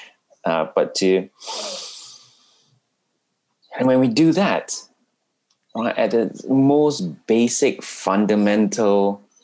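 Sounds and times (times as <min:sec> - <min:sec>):
speech: 0:00.4 - 0:01.8, 0:03.8 - 0:04.9, 0:05.8 - 0:09.2
deep airy breath drawn in close to the microphone: 0:01.4 - 0:02.8.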